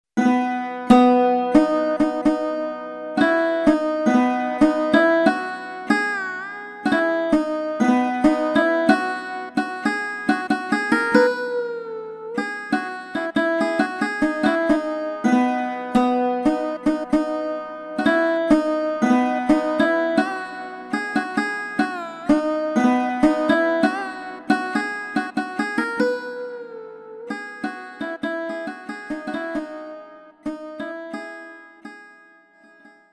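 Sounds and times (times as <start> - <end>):
sarod: 0.2 - 33.1.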